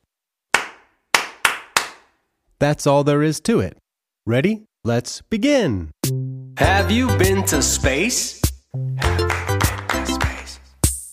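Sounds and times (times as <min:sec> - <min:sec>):
sharp hand claps: 0:00.5 - 0:02.1, 0:09.0 - 0:11.1
speech: 0:02.6 - 0:09.4.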